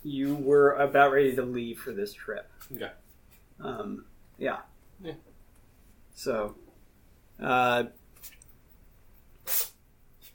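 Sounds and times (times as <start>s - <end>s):
speech: 0.0s - 3.0s, 3.6s - 5.3s, 6.2s - 6.6s, 7.4s - 8.4s
cat sneezing: 9.4s - 10.3s.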